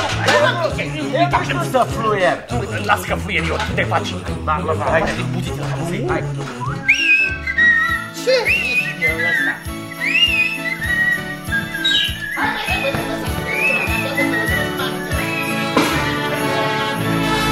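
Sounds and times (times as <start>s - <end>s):
laughter: 0.0s - 4.1s, 7.7s - 16.8s
murmuring voices: 0.0s - 16.9s
steady rhythmic low accompaniment: 0.0s - 17.5s
person whistling a tune while walking off: 6.6s - 15.8s.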